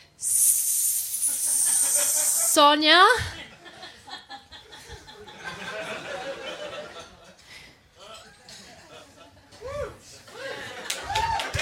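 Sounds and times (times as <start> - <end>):
voice imitating a hissing snake: 0.0 - 2.8
laughter: 1.3 - 2.6, 3.3 - 7.4, 10.3 - 11.6
speech: 2.6 - 3.3.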